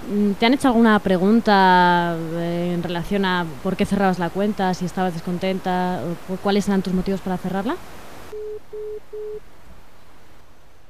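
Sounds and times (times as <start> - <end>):
faint telephone line hiss: 0.0 - 10.8
speech: 0.1 - 8.1, 8.7 - 9.5
telephone busy tone after a dropped call: 8.3 - 9.4.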